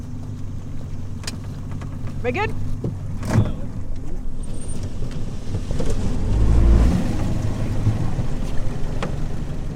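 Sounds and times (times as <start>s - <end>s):
small motorboat engine droning on a small lake in Missouri: 0.0s - 9.7s
speech: 2.2s - 3.0s
water rushing beneath the motorboat: 4.4s - 9.7s.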